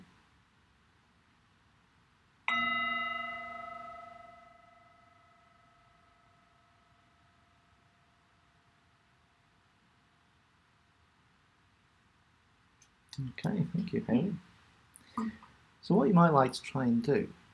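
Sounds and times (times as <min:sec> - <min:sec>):
singing bowl struck and ringing: 0:02.5 - 0:08.9
speech: 0:13.2 - 0:14.5, 0:15.2 - 0:17.4.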